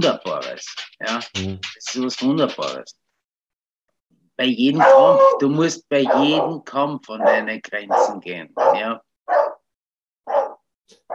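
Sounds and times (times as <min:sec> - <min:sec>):
speech: 0:00.0 - 0:03.0, 0:04.4 - 0:09.5
dog barking sharply: 0:04.8 - 0:05.4, 0:06.0 - 0:06.5, 0:07.2 - 0:09.6, 0:10.2 - 0:11.1.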